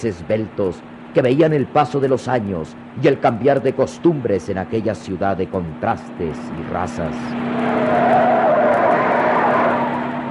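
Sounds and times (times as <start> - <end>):
speech: 0.0 - 8.2
car engine humming while driving: 0.0 - 10.2
tires hissing and faintly squealing on the road: 7.1 - 10.2.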